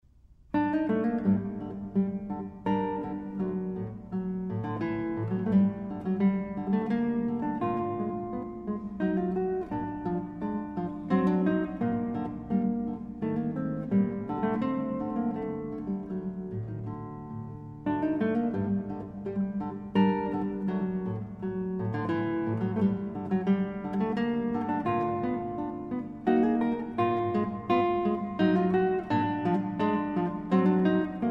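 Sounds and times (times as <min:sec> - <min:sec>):
guitar sonata in D major in minuet tempo: 0:00.0 - 0:31.2.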